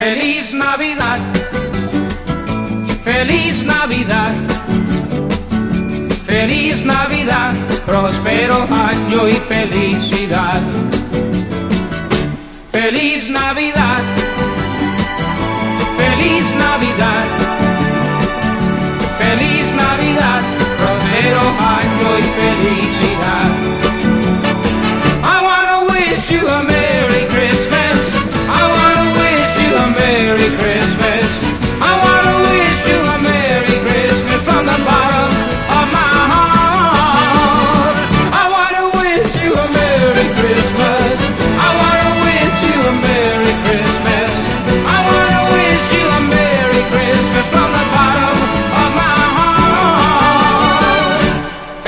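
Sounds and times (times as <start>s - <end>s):
disco music: 0.0s - 51.8s.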